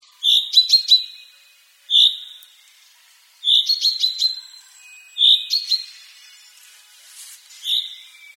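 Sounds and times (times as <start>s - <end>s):
common chaffinch Fringilla coelebs calling: 0.0s - 2.8s, 3.4s - 6.3s, 7.6s - 8.3s.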